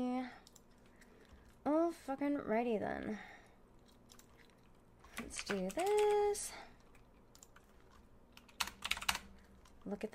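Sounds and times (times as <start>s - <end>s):
speech: 2.1s - 3.4s, 5.3s - 6.7s, 9.8s - 10.1s
typing on a computer keyboard: 4.1s - 9.8s.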